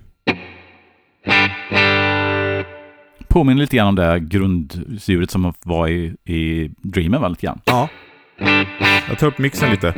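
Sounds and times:
electric guitar chords through a plate reverb pedal: 0.0s - 3.1s, 7.7s - 9.9s
speech: 3.4s - 9.9s.

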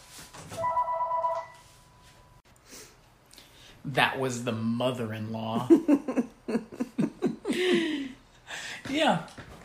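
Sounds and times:
telephone ringing with electronic trill: 0.6s - 2.4s
speech: 3.8s - 6.8s, 9.0s - 9.3s.

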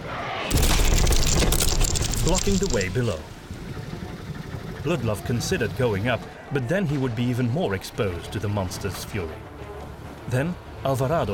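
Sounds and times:
huge tail crashing down onto wooden deck: 0.5s - 3.0s
wooden deck splintering: 0.5s - 3.3s
speech: 2.3s - 3.4s, 4.8s - 9.5s, 10.3s - 11.3s.

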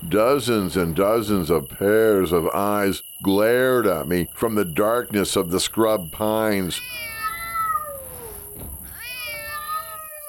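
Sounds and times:
faint hiss: 0.0s - 10.2s
speech: 0.1s - 7.1s
feral cats meowing: 6.6s - 10.2s.

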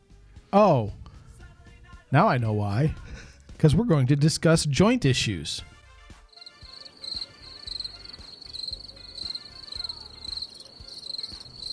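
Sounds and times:
speech: 0.5s - 1.0s, 2.1s - 5.7s
field of crickets chirping: 6.4s - 11.7s.

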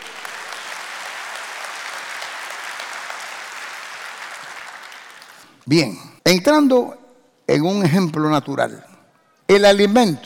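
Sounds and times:
large audience clapping: 0.0s - 5.7s
speech: 5.6s - 8.9s, 9.5s - 10.2s.

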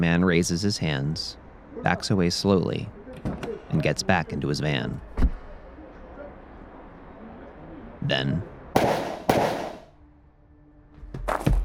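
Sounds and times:
speech: 0.0s - 3.0s, 3.7s - 5.1s, 8.0s - 8.5s
gunshots in a street: 8.8s - 9.9s.

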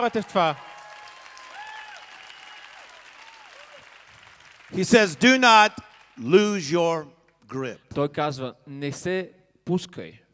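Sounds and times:
speech: 0.0s - 0.7s, 4.7s - 10.2s
crowd clapping: 0.0s - 6.8s.

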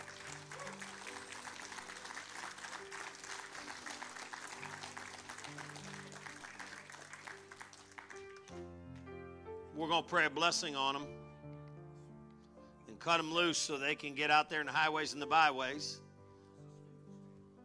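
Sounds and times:
church congregation applauding at a revival service: 0.0s - 8.6s
speech: 9.8s - 11.2s, 13.0s - 16.0s.

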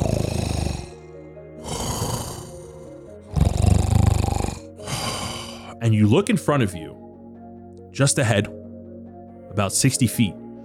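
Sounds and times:
deep snoring: 0.0s - 5.8s
speech: 5.9s - 7.0s, 8.0s - 8.6s, 9.6s - 10.4s.

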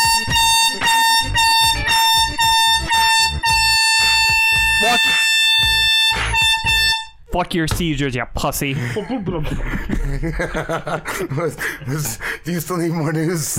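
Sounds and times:
air horn blaring: 0.0s - 7.2s
speech: 7.4s - 13.5s
laughter: 8.7s - 13.5s.

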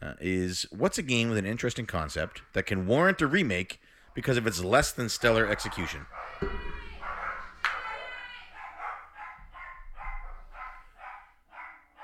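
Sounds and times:
speech: 0.2s - 6.9s
several dogs barking and yipping excitedly fighting over a new toy: 5.1s - 12.0s.

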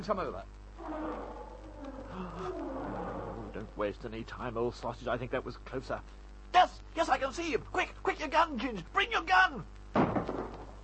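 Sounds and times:
speech: 0.0s - 10.6s
steady hum: 0.0s - 10.8s
lion roaring: 0.8s - 3.7s.

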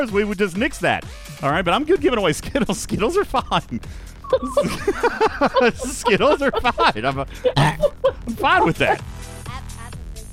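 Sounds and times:
speech: 0.0s - 9.1s
laughter: 2.5s - 9.0s
low drawn-out throaty burp: 7.4s - 9.0s.

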